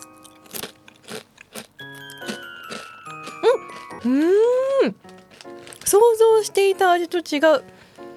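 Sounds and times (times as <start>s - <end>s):
crunching wavy-cut peanut miso potato chips: 0.0s - 7.7s
chiming tones: 1.8s - 4.3s
speech: 4.0s - 5.0s, 5.9s - 7.8s.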